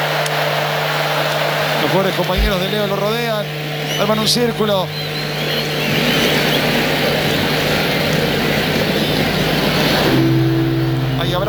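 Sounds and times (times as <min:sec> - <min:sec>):
crowd-like noise: 0:00.0 - 0:11.4
drones buzzing overhead: 0:00.9 - 0:11.4
speech: 0:01.8 - 0:05.2, 0:10.1 - 0:10.4, 0:11.2 - 0:11.4.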